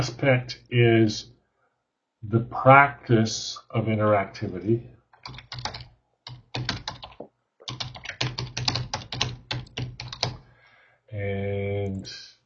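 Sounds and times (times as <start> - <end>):
speech: 0.0 - 1.3, 2.2 - 5.8, 11.2 - 12.2
typing on a computer keyboard: 5.2 - 10.4.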